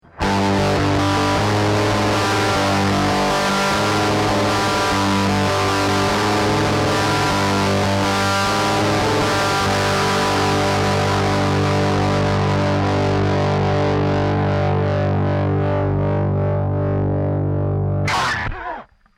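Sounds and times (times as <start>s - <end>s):
distorted guitar arpeggio without reverb: 0.0s - 19.0s.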